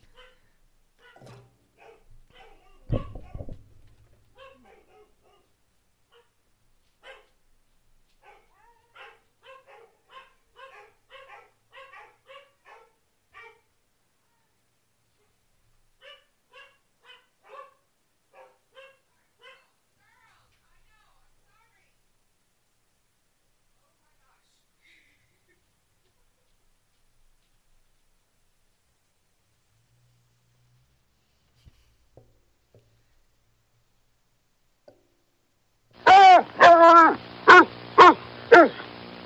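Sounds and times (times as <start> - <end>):
dogs barking at doorbell: 0.0 - 3.6, 4.3 - 6.4, 7.0 - 7.4, 8.2 - 13.7, 16.0 - 19.8, 36.0 - 39.2
heavy thump: 2.9 - 4.2.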